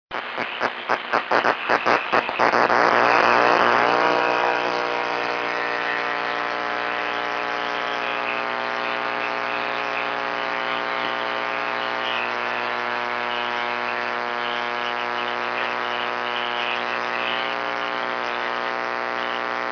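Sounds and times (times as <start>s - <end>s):
6m band AM radio signal: 0.1s - 19.6s.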